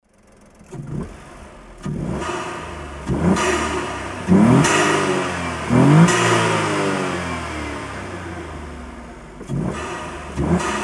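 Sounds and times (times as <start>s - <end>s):
Alto Works HA36S car engine with HKS150: 0.0s - 10.8s.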